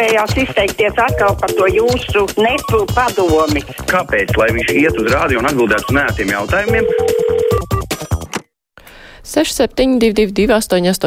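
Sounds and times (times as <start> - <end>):
speech: 0.0 - 7.7, 9.2 - 11.0
telephone ringing with a steady electronic tone and chiming bursts: 1.1 - 2.9, 4.4 - 7.9.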